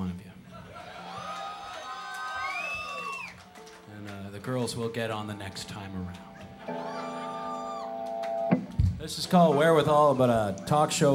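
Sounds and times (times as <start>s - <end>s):
live audience cheering and whooping: 0.5s - 3.6s, 6.6s - 8.5s
speech: 4.4s - 6.3s, 9.0s - 11.1s.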